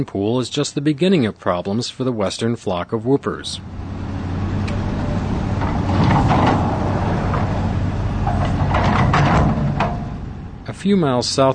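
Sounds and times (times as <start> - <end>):
speech: 0.0 - 3.9, 10.8 - 11.5
heavy earth mover engine rumbling: 3.3 - 11.5
dirt and rock loaded into dump trucks: 3.9 - 10.5
clanks and scraping: 4.6 - 10.3.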